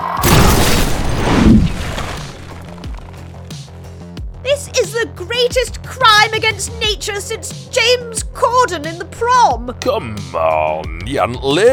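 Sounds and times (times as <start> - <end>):
loud booming blast from exploding bird droppings: 0.2 - 3.3
speech: 5.1 - 11.7.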